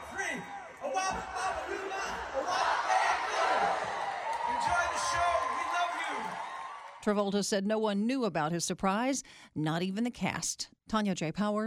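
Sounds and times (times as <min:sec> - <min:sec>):
large audience shouting a line in unison: 0:00.0 - 0:07.0
speech: 0:07.0 - 0:11.6.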